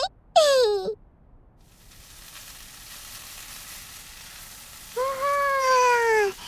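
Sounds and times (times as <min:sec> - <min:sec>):
onions sizzling as they are stir-fried in a pan: 0:01.6 - 0:06.4.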